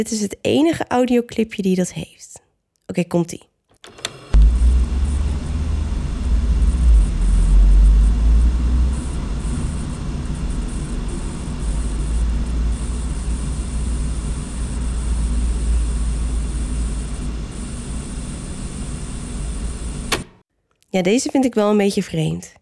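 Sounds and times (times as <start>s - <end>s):
speech: 0.0s - 4.0s, 20.9s - 22.6s
heavy low rumble: 4.4s - 17.5s
continuous static crackling: 4.4s - 20.2s.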